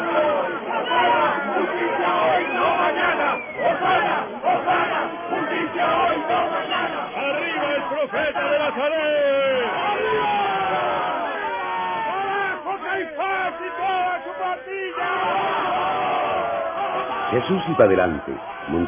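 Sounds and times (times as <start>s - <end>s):
large crowd cheering and shouting acclaim: 0.0s - 18.8s
speech: 17.3s - 18.8s.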